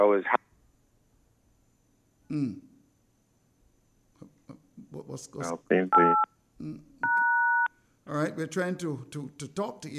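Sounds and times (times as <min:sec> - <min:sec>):
speech: 0:00.0 - 0:00.4, 0:02.3 - 0:02.6, 0:05.2 - 0:06.9, 0:08.1 - 0:09.9
phone giving off electronic tones: 0:05.7 - 0:06.3, 0:07.0 - 0:07.7.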